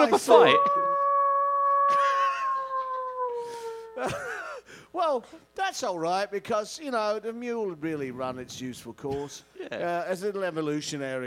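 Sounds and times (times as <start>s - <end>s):
speech: 0.0s - 0.8s, 4.0s - 4.3s, 4.9s - 11.2s
person imitating a wolf howl: 0.3s - 4.2s.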